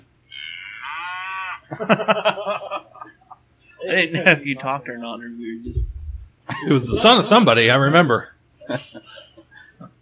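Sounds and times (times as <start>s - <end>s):
person imitating a cow mooing: 0.3s - 1.6s
laughter: 0.8s - 3.4s, 6.5s - 7.4s, 8.7s - 9.6s
speech: 1.7s - 2.6s, 4.0s - 6.0s, 6.6s - 9.3s
quick choppy vocal sounds: 5.6s - 6.3s.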